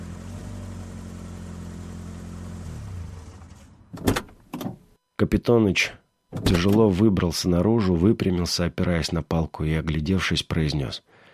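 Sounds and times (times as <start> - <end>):
car engine rumbling in a dead-end lane: 0.0 - 4.0
speech: 5.3 - 11.1.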